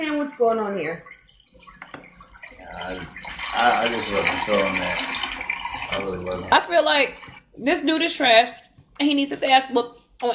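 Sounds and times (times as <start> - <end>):
speech: 0.0 - 1.1, 2.8 - 5.2, 5.9 - 10.3
toilet flushing: 0.0 - 7.5.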